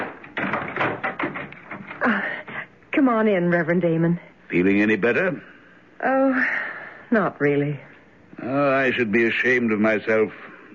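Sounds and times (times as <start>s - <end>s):
door being unlocked with clicks, clunks and rattles: 0.0s - 2.0s
speech: 3.0s - 10.7s.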